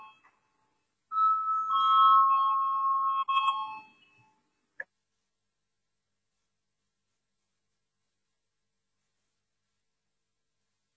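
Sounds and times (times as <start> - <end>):
bell ringing in a parliament chamber to call a vote: 0.0 - 0.3, 1.1 - 4.4.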